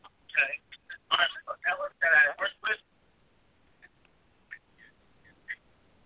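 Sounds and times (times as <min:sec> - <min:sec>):
garbled distorted voice over a phone line: 0:00.3 - 0:02.8.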